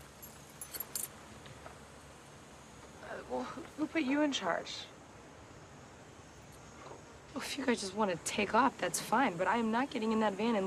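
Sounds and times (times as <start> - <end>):
faint hiss: 0.0 - 10.6
keys jangling: 0.2 - 1.1
speech: 3.2 - 4.9, 7.4 - 10.6.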